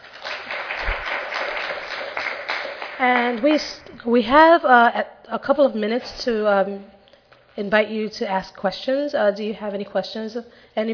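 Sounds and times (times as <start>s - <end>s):
audience applause for presenters: 0.0s - 3.4s
speech: 3.0s - 7.0s, 7.6s - 10.9s.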